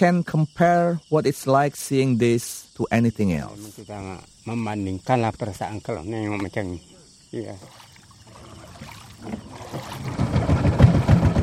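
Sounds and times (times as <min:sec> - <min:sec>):
speech: 0:00.0 - 0:07.8
faint noise: 0:00.0 - 0:09.6
water sounds in a peat canal with tannin-brown water: 0:07.4 - 0:11.3
motor of a wooden outboard boat moving down a peat canal: 0:07.6 - 0:11.4.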